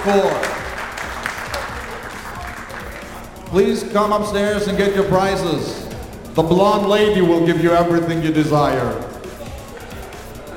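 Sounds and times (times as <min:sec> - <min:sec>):
speech: 0:00.0 - 0:00.5, 0:03.5 - 0:05.8, 0:06.4 - 0:09.1
audience applause at a competition prize giving: 0:00.0 - 0:03.2.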